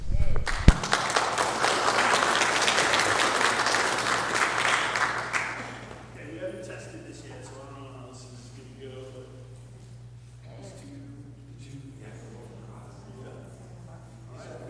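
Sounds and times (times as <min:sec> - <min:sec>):
audience clapping in a room: 0:00.4 - 0:06.2.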